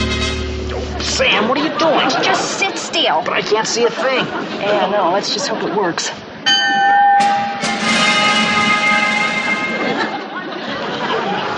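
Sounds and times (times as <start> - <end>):
crowd chatter and bustle: 0.0 - 6.4, 7.3 - 11.5
laughter: 0.7 - 2.9, 3.6 - 5.9, 9.4 - 11.5
speech: 1.2 - 6.3
bell ringing: 6.5 - 10.4.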